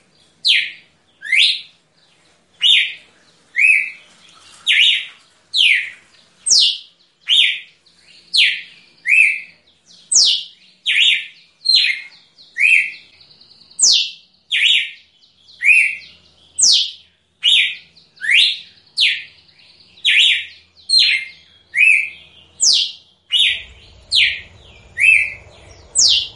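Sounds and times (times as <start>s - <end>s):
female red-cowled cardinal singing in nature: 0.4s - 1.8s, 2.6s - 26.3s
faint low rumble: 23.1s - 26.3s.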